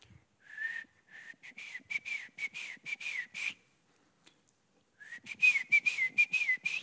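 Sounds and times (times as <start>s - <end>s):
person whistling rapid repeated chirping notes: 0.5s - 3.6s, 5.0s - 6.8s.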